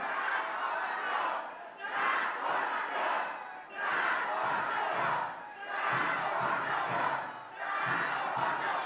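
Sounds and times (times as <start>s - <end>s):
large crowd at a political rally in Solidaridad Mexico chanting in unison: 0.0s - 8.8s.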